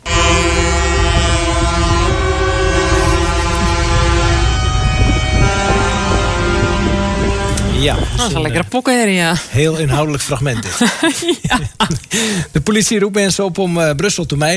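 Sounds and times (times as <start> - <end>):
farmers' vehicle horns blaring in protest: 0.0 - 8.6
low engine rumble: 0.0 - 8.6
laughter: 3.0 - 4.2, 9.4 - 12.5
speech: 7.9 - 14.5.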